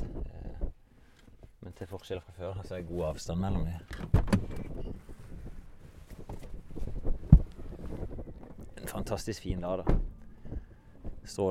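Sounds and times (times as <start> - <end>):
speech: 1.8 - 4.7, 9.0 - 10.1, 11.3 - 11.5
wind gusts outdoors: 2.8 - 11.5.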